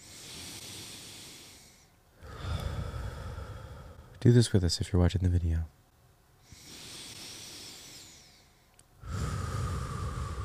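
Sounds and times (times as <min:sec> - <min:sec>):
deep breathing in through the nose and out through the mouth: 0:00.0 - 0:04.2, 0:06.4 - 0:10.4
speech: 0:04.2 - 0:05.8.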